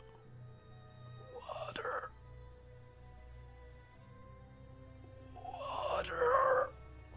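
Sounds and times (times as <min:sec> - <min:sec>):
voice imitating an eerie breathy whisper: 0:01.2 - 0:02.2, 0:05.0 - 0:07.1.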